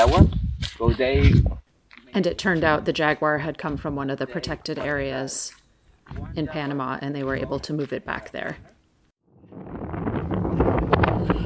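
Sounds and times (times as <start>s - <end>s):
strong wind roaring across an exposed mountainside in the rain: 0.0s - 1.6s, 9.3s - 11.4s
speech: 0.0s - 8.7s.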